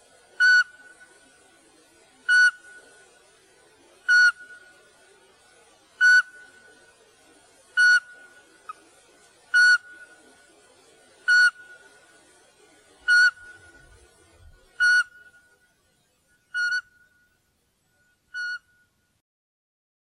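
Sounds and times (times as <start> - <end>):
Eurasian pygmy owl whistled hoot: 0.4 - 1.1, 2.3 - 2.8, 4.1 - 4.7, 6.0 - 6.6, 7.8 - 8.9, 9.5 - 10.3, 11.2 - 12.0, 13.0 - 14.0, 14.7 - 15.3, 16.5 - 16.9, 18.3 - 18.6.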